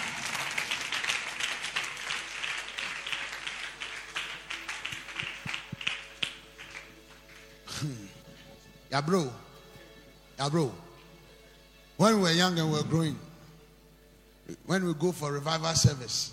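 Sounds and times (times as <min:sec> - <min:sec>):
large crowd at a church prayer service clapping: 0:00.0 - 0:08.0
speech: 0:08.9 - 0:09.4, 0:10.4 - 0:10.9, 0:12.0 - 0:13.2, 0:14.7 - 0:16.3.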